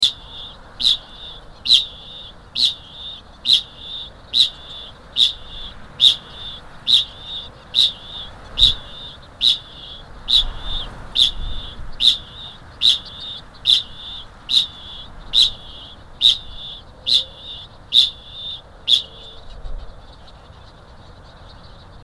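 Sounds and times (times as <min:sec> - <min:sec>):
kakapo bird song: 0:00.0 - 0:22.0.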